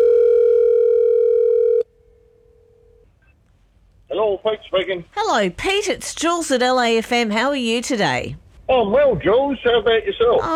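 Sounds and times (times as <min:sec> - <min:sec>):
telephone ringing tone on outgoing call: 0:00.0 - 0:01.9
speech: 0:04.4 - 0:10.5.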